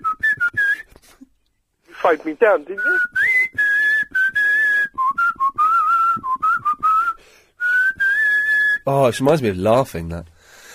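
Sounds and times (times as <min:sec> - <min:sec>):
person whistling a tune: 0:00.0 - 0:01.0, 0:02.7 - 0:08.8
speech: 0:02.0 - 0:03.1, 0:08.9 - 0:10.3.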